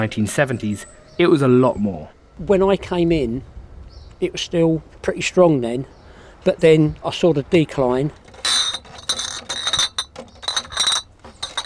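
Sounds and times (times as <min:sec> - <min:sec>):
speech: 0:00.0 - 0:03.5, 0:04.2 - 0:08.9
glass milk bottles clinking together: 0:08.3 - 0:11.6.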